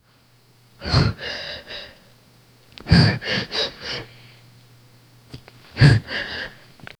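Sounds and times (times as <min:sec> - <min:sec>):
two men struggling: 0:00.8 - 0:02.0, 0:02.8 - 0:04.1, 0:05.6 - 0:06.6.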